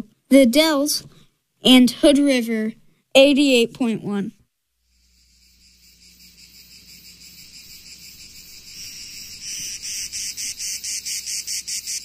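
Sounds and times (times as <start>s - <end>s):
speech: 0.0s - 4.4s
cicadas buzzing among cypresses and lemon trees in the south: 4.8s - 12.0s.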